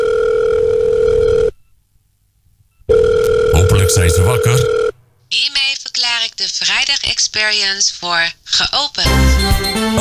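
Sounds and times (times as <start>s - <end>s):
telephone dial tone while placing a call: 0.0s - 1.5s, 2.9s - 4.9s
speech: 3.9s - 4.8s, 6.4s - 9.9s.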